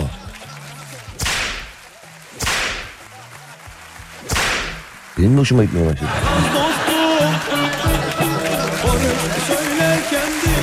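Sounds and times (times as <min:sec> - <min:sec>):
sharp loud whip cracks: 0:01.1 - 0:03.2, 0:04.2 - 0:05.0
speech: 0:05.2 - 0:06.6
laughter: 0:06.0 - 0:10.6.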